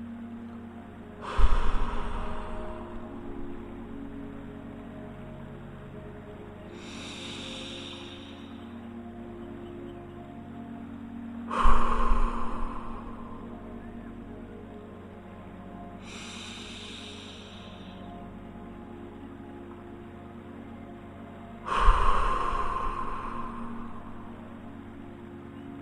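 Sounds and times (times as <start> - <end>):
low hum: 0.0 - 25.8
slow deep breaths in and out: 1.2 - 4.3, 6.7 - 9.0, 11.5 - 13.9, 16.0 - 18.4, 21.6 - 25.1.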